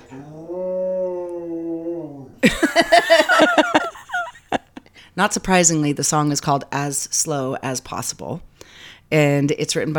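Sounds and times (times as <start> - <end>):
dog howling and yipping: 0.0 - 2.4
speech: 2.4 - 3.9, 5.2 - 9.9
laughter: 2.4 - 4.8.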